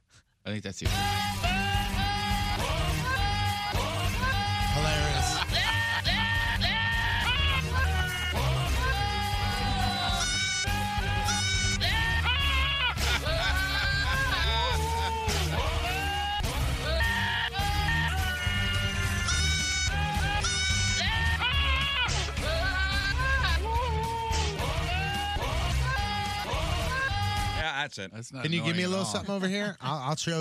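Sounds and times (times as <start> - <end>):
speech: 0.4 - 1.8, 27.8 - 30.4
dense backing music: 0.8 - 27.6
screaming goats bleating a melody: 1.8 - 15.2, 17.0 - 23.9
laughter: 2.2 - 27.6.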